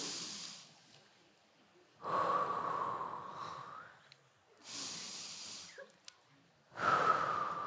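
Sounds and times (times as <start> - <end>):
deep breaths during a guided relaxation exercise: 0.0 - 0.8, 2.0 - 3.9, 4.6 - 5.8, 6.7 - 7.6.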